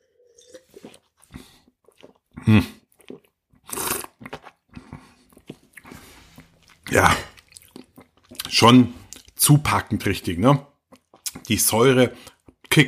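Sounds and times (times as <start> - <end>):
person slurping a sip of old-vine wine: 0.0 - 9.3
mouth clicks and smacks: 0.8 - 9.5, 10.9 - 12.8
speech: 2.5 - 2.8, 6.9 - 7.3, 8.6 - 10.7, 11.5 - 12.8.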